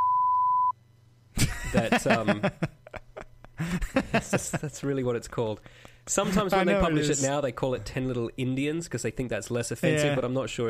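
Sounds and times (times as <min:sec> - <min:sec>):
censor bleep tone covering a spoken word: 0:00.0 - 0:00.8
laughter: 0:01.4 - 0:05.0, 0:06.1 - 0:07.3
speech: 0:01.7 - 0:02.8, 0:04.1 - 0:10.6.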